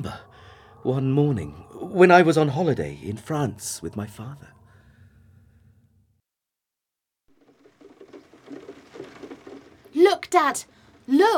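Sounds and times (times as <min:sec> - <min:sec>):
speech: 0:00.8 - 0:04.6, 0:10.0 - 0:11.3
soft steady rain pattering at a hotel in France: 0:07.3 - 0:11.3.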